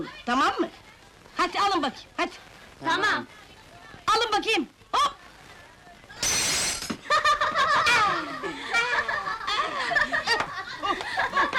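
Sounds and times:
speech: 0.0s - 3.4s, 4.1s - 5.2s
window glass shattering from a ball: 6.2s - 7.1s
several excited voices shouting and laughing: 7.0s - 11.5s.

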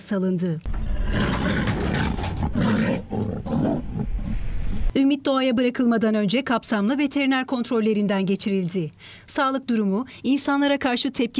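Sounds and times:
speech: 0.1s - 1.7s, 2.4s - 11.3s
female Amur tiger roaring: 0.7s - 4.9s.

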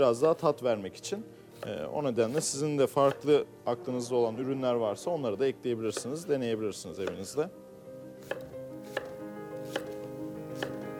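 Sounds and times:
speech: 0.0s - 7.6s
soft steady music: 0.0s - 10.9s
knife chopping vegetables on a cutting board: 1.6s - 3.3s, 5.9s - 6.2s, 7.0s - 7.3s, 8.2s - 10.9s.

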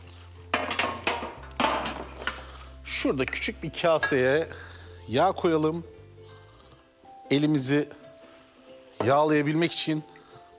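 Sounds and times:
metal oven baking tray being picked up and handled in a kitchen: 0.6s - 2.2s
speech: 3.0s - 5.9s, 7.3s - 8.0s, 9.0s - 10.5s.

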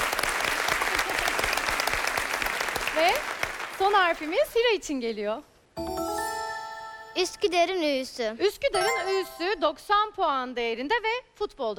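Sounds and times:
audience applause on a quiz show: 0.0s - 4.4s
speech: 3.9s - 6.0s, 7.2s - 11.7s.

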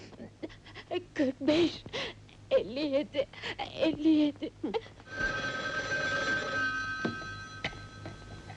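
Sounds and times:
speech: 1.2s - 2.0s, 2.6s - 5.3s
telephone ringing with an electronic tone: 5.1s - 8.5s.

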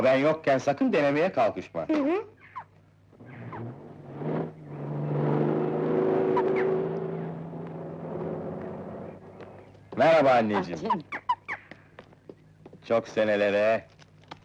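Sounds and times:
speech: 0.0s - 2.4s, 10.0s - 11.2s, 12.9s - 13.9s
car engine driving: 3.1s - 10.4s.

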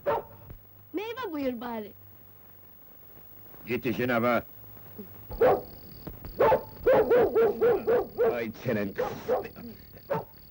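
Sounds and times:
dog barking in short high yips: 0.0s - 0.4s, 5.3s - 5.7s, 6.4s - 10.4s
speech: 1.4s - 2.0s, 3.6s - 5.7s, 7.1s - 10.3s.

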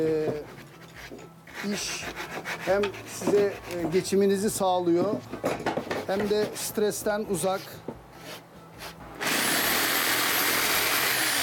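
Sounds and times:
speech: 0.0s - 5.4s, 6.1s - 7.8s
quieter scraping: 0.3s - 6.8s
power sander sanding with broadband hiss and whine: 9.2s - 11.4s.

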